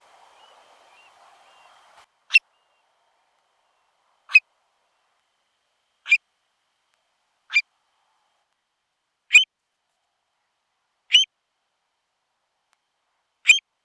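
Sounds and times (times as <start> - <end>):
Burhinus oedicnemus call: 0.0 - 2.9, 3.6 - 4.5, 6.0 - 6.2, 7.5 - 7.7, 11.1 - 11.3, 13.4 - 13.6.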